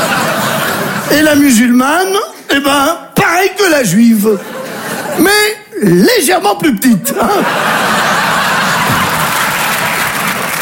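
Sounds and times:
live audience laughing: 0.0 - 1.1, 4.3 - 5.5, 6.8 - 10.5
speech: 1.2 - 4.6, 5.2 - 7.9
live audience applause: 7.4 - 10.5.

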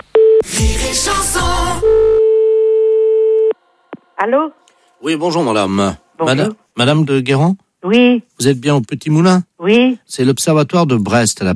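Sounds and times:
speech: 0.4 - 2.0, 4.2 - 11.5
telephone line tone after hanging up: 1.8 - 3.6.

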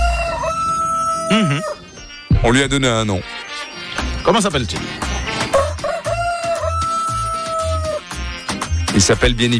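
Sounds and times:
rooster crowing in a studio: 0.0 - 2.0, 5.5 - 8.1
speech: 1.3 - 1.7, 2.4 - 3.4, 4.2 - 5.1, 9.0 - 9.5.

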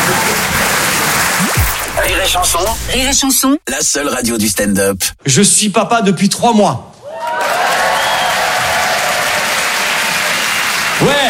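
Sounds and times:
crowd applauding: 0.0 - 2.6, 7.1 - 11.2
speech: 2.2 - 6.9.

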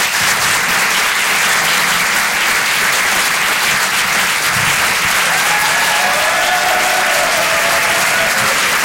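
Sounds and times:
large audience applauding loudly: 0.0 - 8.8
faint cheers: 5.2 - 8.8.

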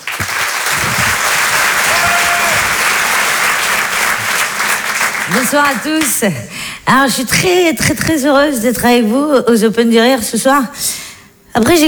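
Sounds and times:
audience applause welcoming a performer at a comedy evening: 0.0 - 6.2
speech: 5.3 - 11.0, 11.6 - 11.8.

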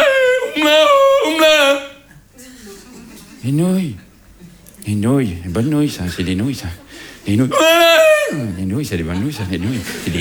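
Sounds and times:
person singing a wavering howl-like Tyrolean yodel: 0.0 - 2.1, 7.5 - 8.5
laughter: 0.0 - 10.2
speech: 3.4 - 4.1, 4.8 - 10.2.

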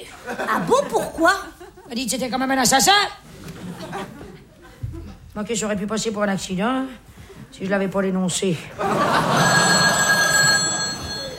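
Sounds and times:
laughter: 0.0 - 1.9, 3.4 - 5.2, 8.8 - 11.3
speech: 0.2 - 3.3, 5.4 - 9.8
telephone ringing with a continuous electronic tone: 8.9 - 11.3.

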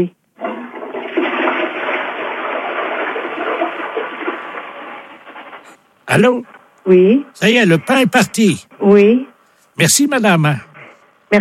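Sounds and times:
toilet flushing heard over a telephone line: 0.4 - 5.9
speech: 6.1 - 10.7.

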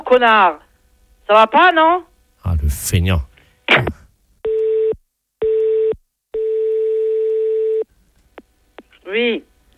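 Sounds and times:
speech: 0.1 - 0.7, 1.3 - 4.0, 9.1 - 9.5
telephone line tone beeps of unanswered call: 4.5 - 7.8.

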